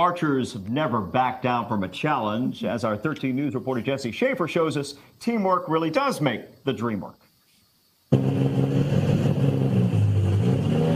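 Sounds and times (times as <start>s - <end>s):
speech: 0.0s - 7.2s
old tractor engine revving: 8.1s - 10.9s.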